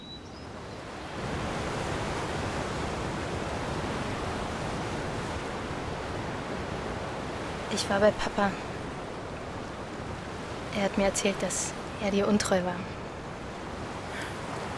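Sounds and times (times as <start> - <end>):
ocean waves washing against the seashore: 0.0 - 14.7
speech: 7.7 - 8.7, 10.8 - 13.0.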